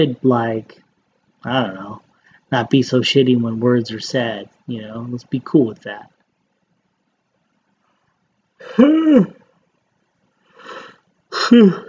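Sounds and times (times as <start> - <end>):
speech: 0.0 - 0.8, 1.4 - 6.1, 8.6 - 9.4, 10.7 - 11.8
yawn: 8.6 - 9.5, 10.6 - 11.8.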